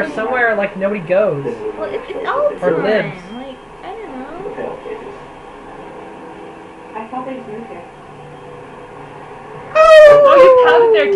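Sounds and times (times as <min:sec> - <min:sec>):
speech: 0:00.0 - 0:03.4, 0:07.0 - 0:07.9, 0:09.7 - 0:11.1
person imitating a dog howl in a studio: 0:09.8 - 0:11.1.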